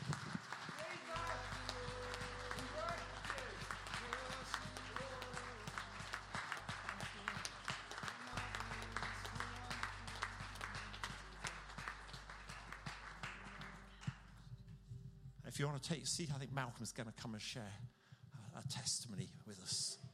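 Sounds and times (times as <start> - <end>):
church audience applauding: 0.0 - 14.4
low sustained keyboard notes: 1.0 - 17.1
speech: 15.6 - 18.0, 18.6 - 20.0.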